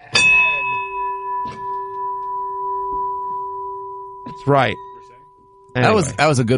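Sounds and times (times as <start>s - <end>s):
bell struck and ringing with a sustained metallic tone: 0.0s - 6.5s
speech: 4.4s - 4.9s, 5.8s - 6.5s.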